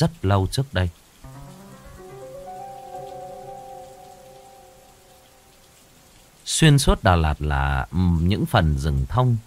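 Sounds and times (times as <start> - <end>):
speech: 0.0 - 1.0, 6.6 - 9.4
heavy rain in a pine-forested highland area: 0.0 - 9.4
soft melodic tone: 1.2 - 6.4.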